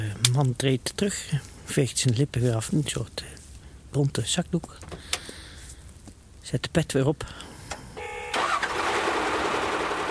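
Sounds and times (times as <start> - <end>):
speech: 0.4 - 5.3, 6.5 - 7.5
shovel loader engine starting at a burial pit: 8.3 - 10.0.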